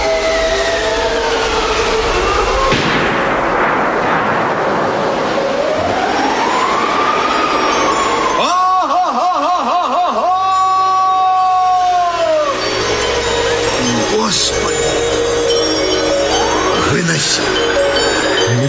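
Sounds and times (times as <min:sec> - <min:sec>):
high wavering howls or whistling tones: 0:00.0 - 0:02.8, 0:05.4 - 0:18.6
single loud gunshot: 0:02.7 - 0:05.7
laughter: 0:08.4 - 0:10.7.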